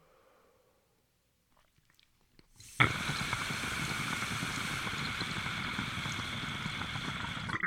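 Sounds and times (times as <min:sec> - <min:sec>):
steady loud hissing: 0:02.6 - 0:07.6.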